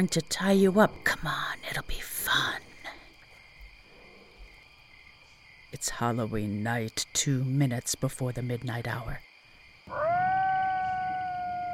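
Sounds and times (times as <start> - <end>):
speech: 0.0 - 2.6, 5.8 - 9.3
coyote howling on a golf course at night: 9.9 - 11.7.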